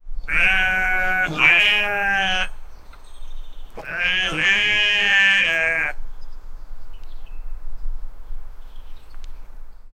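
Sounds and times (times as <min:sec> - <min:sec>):
goat bleating: 0:00.3 - 0:02.6, 0:03.8 - 0:06.0.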